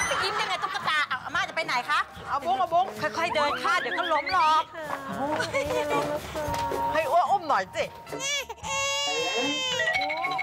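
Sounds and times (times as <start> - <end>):
laughter: 0.0 - 1.4, 3.0 - 6.1
speech: 1.6 - 8.5
small child crying: 8.1 - 10.0.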